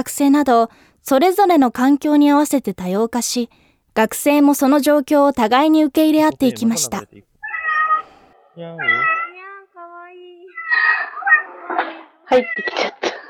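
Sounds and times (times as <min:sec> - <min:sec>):
speech: 0:00.0 - 0:07.3, 0:08.6 - 0:09.2, 0:12.3 - 0:13.0
pet domestic cat meowing during an online class: 0:07.4 - 0:09.6, 0:10.5 - 0:13.0.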